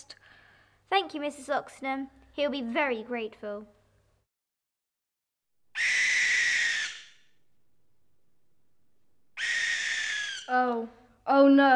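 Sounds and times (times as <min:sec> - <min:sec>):
speech: 0:00.9 - 0:03.8, 0:10.5 - 0:11.7
white bird, likely an owl, screeching: 0:05.7 - 0:07.4, 0:09.4 - 0:10.6.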